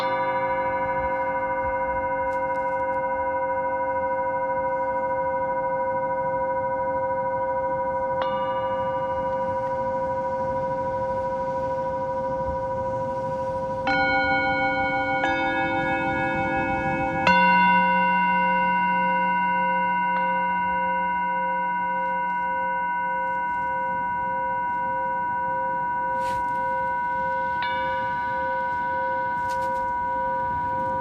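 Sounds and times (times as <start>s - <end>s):
singing bowls ringing: 0.0s - 31.0s
faint rustle: 26.1s - 31.0s.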